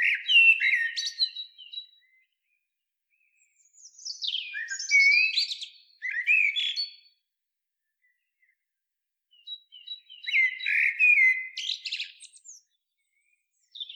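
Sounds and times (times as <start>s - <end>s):
Eurasian blackbird Turdus merula singing: 0.0s - 2.4s, 3.1s - 7.2s, 9.3s - 13.9s.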